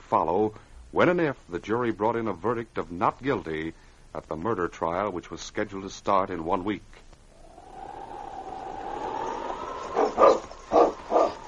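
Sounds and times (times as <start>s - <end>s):
speech: 0.1s - 7.0s
sled team of huskies barking: 7.4s - 11.4s
whistling wind: 7.4s - 11.4s.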